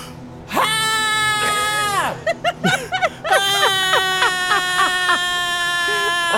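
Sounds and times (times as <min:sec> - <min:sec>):
long shrill human scream breaking into yelps and wavering wail: 0:00.5 - 0:02.3, 0:03.3 - 0:06.3
laughter: 0:01.5 - 0:06.3.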